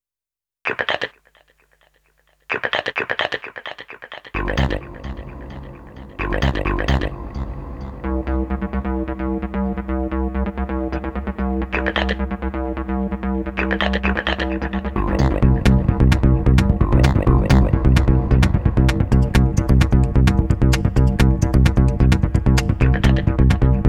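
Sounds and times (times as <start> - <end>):
vocal synth: 0.7 - 1.2, 2.5 - 23.8.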